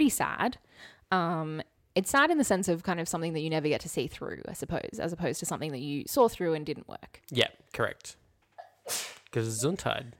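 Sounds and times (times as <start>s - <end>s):
speech: 0.1s - 8.2s, 8.9s - 10.1s
forceful sneeze: 8.6s - 9.3s.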